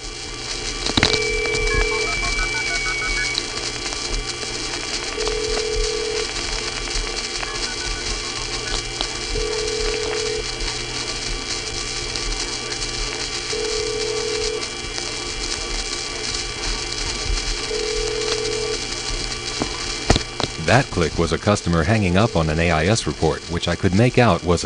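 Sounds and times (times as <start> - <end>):
steady electrical hum on a telephone line: 0.0 - 24.6
repeating low beep on a telephone line: 1.0 - 3.4
thin high-pitched telephone trunk line oscillating squeal: 1.0 - 3.6, 7.4 - 8.8
speech: 20.7 - 24.6.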